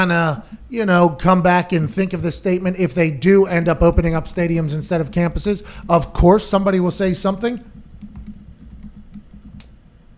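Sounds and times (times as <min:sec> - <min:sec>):
speech: 0:00.0 - 0:07.8
fast typing on a computer keyboard: 0:06.3 - 0:09.9.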